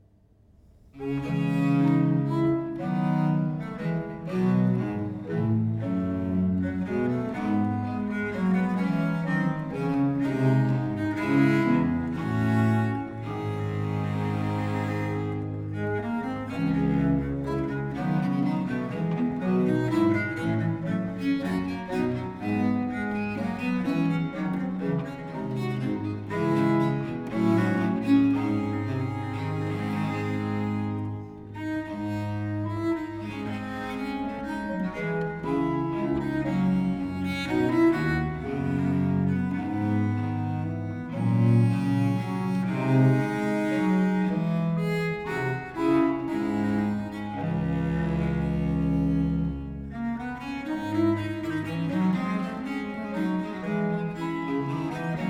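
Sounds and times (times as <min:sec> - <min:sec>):
duo for two bass viols in D major and minor: 0:01.0 - 0:55.2.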